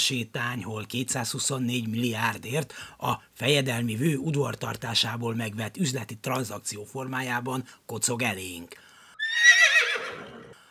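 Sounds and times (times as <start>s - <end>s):
speech: 0.0s - 8.9s
horse neighing: 9.2s - 10.6s.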